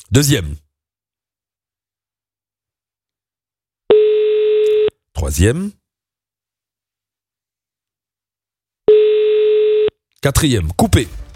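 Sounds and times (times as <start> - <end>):
speech: 0.1 - 0.6, 5.2 - 5.8, 10.2 - 11.2
telephone ringback tone: 3.9 - 4.9, 8.9 - 9.9.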